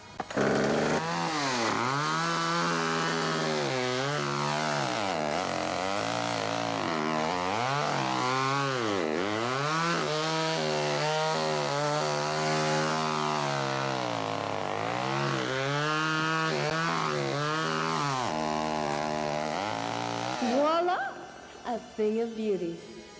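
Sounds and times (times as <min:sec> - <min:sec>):
chainsaw revving while carving a pumpkin: 0:00.0 - 0:20.9
speech: 0:22.0 - 0:22.9.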